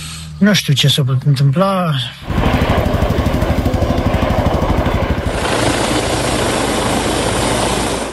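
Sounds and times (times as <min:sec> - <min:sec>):
speech: 0:00.4 - 0:03.0
helicopter rotor chopping during search operation: 0:02.2 - 0:08.1.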